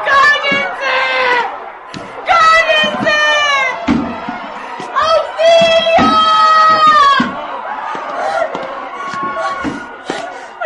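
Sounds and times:
several voices shrieking and yelling: 0:00.0 - 0:10.6
sharp knocks and thuds: 0:00.4 - 0:00.7, 0:02.0 - 0:03.2, 0:03.8 - 0:10.2.

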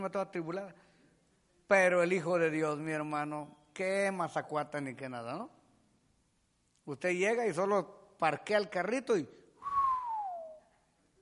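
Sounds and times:
speech: 0:00.0 - 0:00.9, 0:01.7 - 0:05.6, 0:06.9 - 0:09.4
descending whistle: 0:09.6 - 0:10.7.

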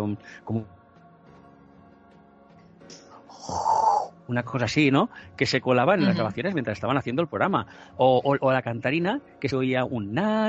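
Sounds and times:
speech: 0:00.0 - 0:00.8, 0:04.3 - 0:10.4
voice imitating heavy rasping breathing: 0:03.3 - 0:04.1.

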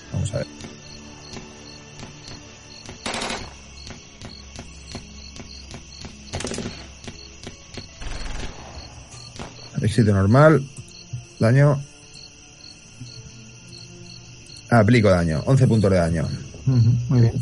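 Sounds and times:
insect-like chirping: 0:00.0 - 0:17.4
speech: 0:00.2 - 0:01.5, 0:09.9 - 0:10.8, 0:11.4 - 0:11.9, 0:14.7 - 0:17.4
soldiers' rifle fire: 0:02.9 - 0:03.7, 0:06.3 - 0:07.0, 0:08.0 - 0:09.7
heavier gunfire bursts: 0:03.0 - 0:03.7, 0:08.0 - 0:09.7.

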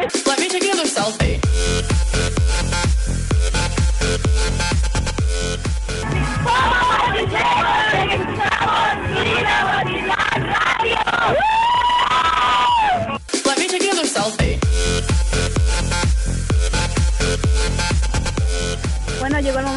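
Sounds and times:
loud music with a steady punchy beat: 0:00.0 - 0:11.5, 0:12.6 - 0:19.7
speech: 0:01.0 - 0:01.4
crowd shouting the Mexican independence cry: 0:06.0 - 0:13.2.

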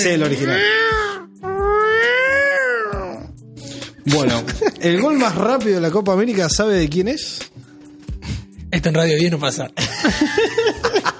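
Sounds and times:
speech: 0:00.0 - 0:01.0, 0:04.0 - 0:07.6, 0:08.7 - 0:10.9
cat meowing loudly: 0:00.4 - 0:03.3
laughter: 0:04.3 - 0:05.4, 0:09.8 - 0:11.1.

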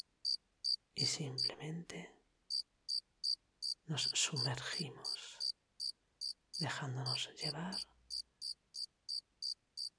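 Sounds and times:
speech: 0:01.0 - 0:02.2, 0:03.9 - 0:05.4, 0:06.6 - 0:07.9
crickets chirping: 0:02.5 - 0:03.8, 0:04.4 - 0:06.6, 0:07.7 - 0:09.9.

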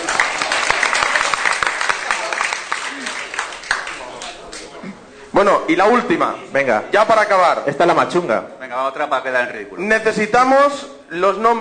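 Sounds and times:
crowd applauding: 0:00.0 - 0:04.7
speech: 0:05.4 - 0:11.5.

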